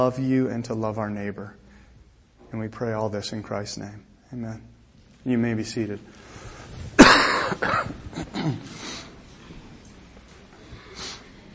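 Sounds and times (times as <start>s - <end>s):
speech: 0.0s - 1.6s, 2.5s - 6.5s, 7.6s - 9.0s
person coughing from a lingering cold: 7.0s - 8.9s
faint sniff: 8.3s - 9.2s, 10.8s - 11.4s.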